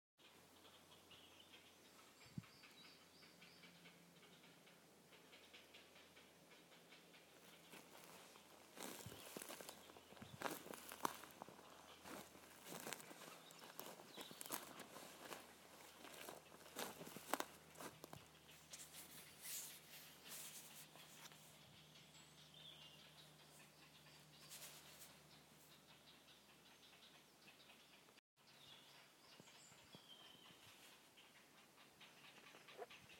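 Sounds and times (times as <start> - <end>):
chicks in trees: 0.2 - 33.1.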